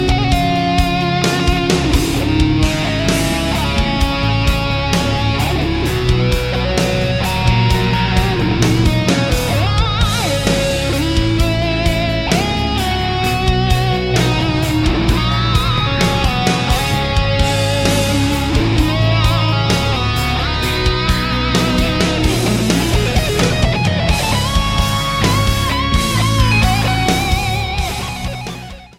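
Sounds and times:
guitar solo: 0.0 - 28.9.

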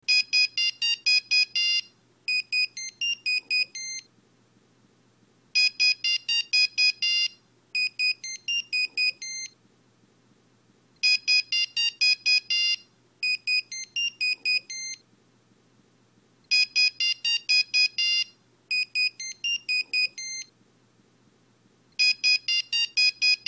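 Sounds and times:
Nokia SMS ringtone: 0.1 - 4.0, 5.6 - 9.5, 11.0 - 12.8, 13.5 - 15.0, 16.5 - 20.5, 22.0 - 23.4.

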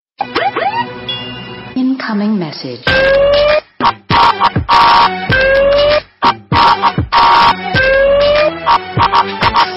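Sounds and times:
incoming message siren: 0.2 - 1.4, 2.9 - 6.0, 6.6 - 9.6.

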